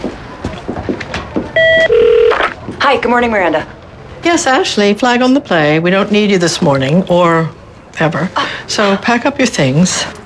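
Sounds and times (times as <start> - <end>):
office telephone ringing with an electronic tone: 1.6 - 2.5
speech: 2.9 - 10.2.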